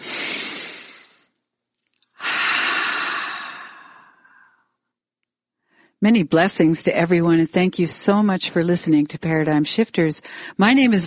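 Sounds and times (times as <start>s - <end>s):
deep inhale during a guided relaxation exercise: 0.0s - 1.3s, 2.2s - 4.7s
speech: 6.0s - 11.0s.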